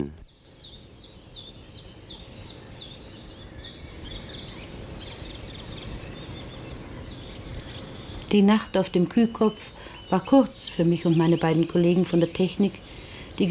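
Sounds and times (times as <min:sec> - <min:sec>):
speech: 0:00.0 - 0:00.7, 0:08.3 - 0:13.4
bird singing in the early morning in spring: 0:00.0 - 0:13.4.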